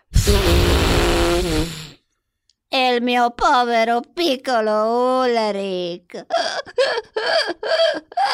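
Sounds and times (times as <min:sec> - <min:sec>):
nose blowing into a handkerchief: 0:00.0 - 0:02.0
speech: 0:03.0 - 0:08.3.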